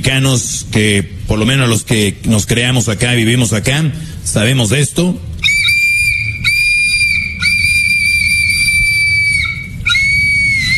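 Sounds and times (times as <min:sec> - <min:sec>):
low rumbling background: 0:00.0 - 0:10.7
speech: 0:00.1 - 0:05.4
shrill toy trumpet whistle blown: 0:05.4 - 0:10.7.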